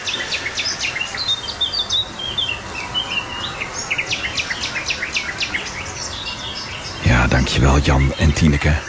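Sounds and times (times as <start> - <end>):
garden warbler nightingale blackcap and icterine warbler dawn chorus: 0.0 - 8.8
soft outdoor hiss: 0.0 - 8.8
speech: 7.4 - 8.8.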